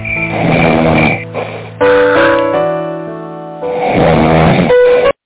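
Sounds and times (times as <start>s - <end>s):
person snoring with rattling, croaky breaths: 0.3s - 2.3s, 3.7s - 5.2s.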